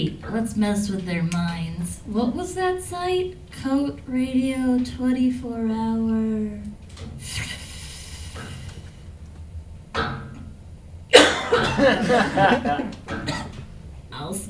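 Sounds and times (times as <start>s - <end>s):
speech: 0.0s - 7.5s, 11.8s - 13.0s
low hum: 0.0s - 14.4s
harsh coughing: 11.1s - 13.7s
laughter: 11.1s - 14.4s.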